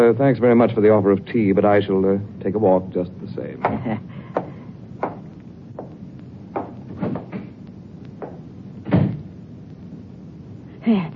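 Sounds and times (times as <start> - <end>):
speech: 0.0 - 4.2
low hum: 0.0 - 11.1
wooden door clunking and knocking: 6.6 - 7.5
door shutting with a heavier thud: 6.6 - 7.6, 8.8 - 9.3.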